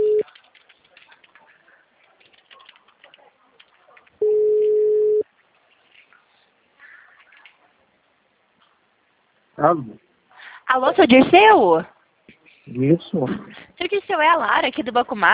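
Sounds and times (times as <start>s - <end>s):
telephone tone while calling: 0.0s - 0.2s, 4.2s - 5.2s
speech: 9.6s - 10.0s, 10.7s - 11.9s, 12.7s - 15.3s.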